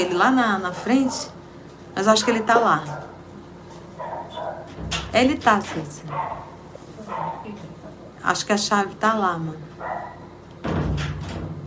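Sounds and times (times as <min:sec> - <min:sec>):
speech: 0:00.0 - 0:01.4, 0:02.0 - 0:03.1, 0:05.1 - 0:06.5, 0:08.2 - 0:11.1
quiet hum: 0:00.0 - 0:11.6
two dogs barking at each other: 0:00.9 - 0:01.4, 0:02.1 - 0:03.3, 0:04.0 - 0:04.8, 0:06.1 - 0:07.6, 0:09.8 - 0:10.4.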